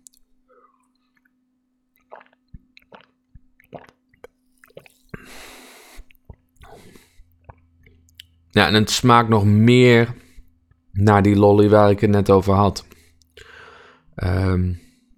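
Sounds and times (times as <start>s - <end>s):
small wet clicks and squishes from the mouth: 2.0s - 5.3s, 5.9s - 8.4s
swallow: 2.0s - 8.0s
slurping sips of a fizzy cola-flavoured drink: 2.1s - 7.2s
speech: 8.6s - 10.2s, 11.0s - 12.9s, 14.2s - 14.8s.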